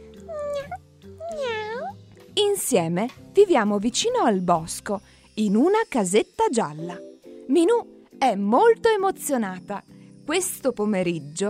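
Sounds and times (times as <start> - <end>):
small black kitten meowing: 0.2 - 2.0
speech: 2.4 - 11.4.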